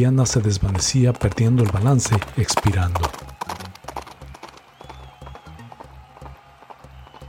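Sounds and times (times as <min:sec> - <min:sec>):
speech: 0:00.0 - 0:03.3
galloping horse hoofbeats: 0:00.0 - 0:07.2.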